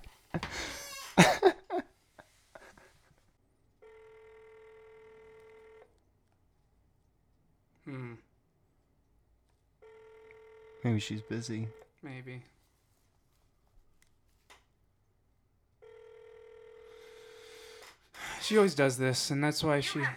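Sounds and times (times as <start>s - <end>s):
laughter: 0.4s - 1.8s, 19.6s - 20.1s
phone ringing tone: 3.8s - 5.9s, 9.8s - 11.9s, 15.8s - 17.5s
speech: 11.0s - 12.6s, 18.5s - 20.1s.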